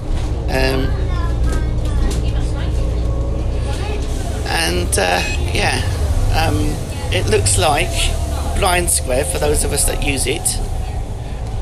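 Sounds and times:
moving bus engine and road noise rumbling: 0.0s - 11.6s
speech: 4.9s - 10.8s.

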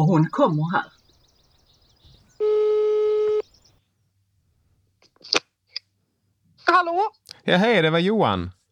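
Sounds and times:
speech: 0.0s - 1.0s, 6.7s - 8.6s
telephone ringing tone of outgoing call: 2.4s - 3.5s.

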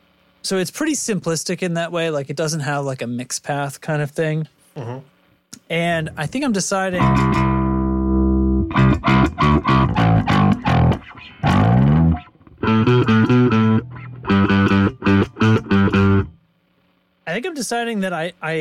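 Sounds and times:
speech: 0.4s - 5.1s, 5.7s - 7.6s, 9.3s - 14.9s, 17.4s - 18.5s
distorted electric guitar through an overdrive pedal into a driven amp: 6.9s - 16.4s.

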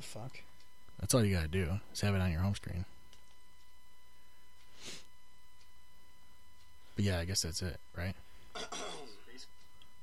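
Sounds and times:
speech: 0.0s - 3.0s, 7.0s - 8.7s
person coughing and clearing throat: 8.5s - 9.2s.

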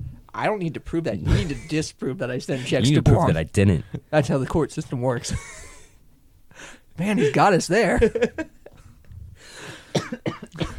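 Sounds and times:
speech: 0.4s - 5.7s, 6.6s - 8.5s
laughter: 1.3s - 1.8s, 7.1s - 8.8s
person coughing: 9.8s - 10.7s.

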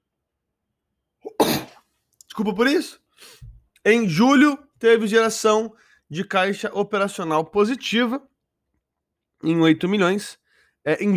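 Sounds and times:
person sneezing: 1.2s - 1.9s
speech: 2.4s - 8.3s, 9.4s - 11.1s.

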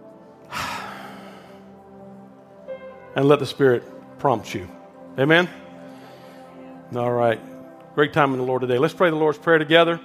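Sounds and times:
deep breath: 0.5s - 1.9s, 5.6s - 6.8s
speech: 3.2s - 5.6s, 6.9s - 10.0s.

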